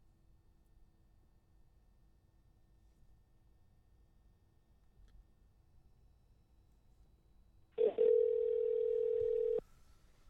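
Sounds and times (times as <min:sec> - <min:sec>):
telephone dial tone: 0:07.8 - 0:09.6.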